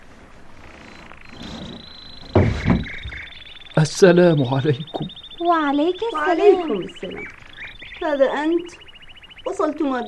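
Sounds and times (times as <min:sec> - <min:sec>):
faint steady hiss: 0:00.0 - 0:10.0
door scraping and knocking as it swings: 0:00.5 - 0:03.3
speech: 0:03.8 - 0:07.4, 0:08.0 - 0:08.8, 0:09.5 - 0:10.0.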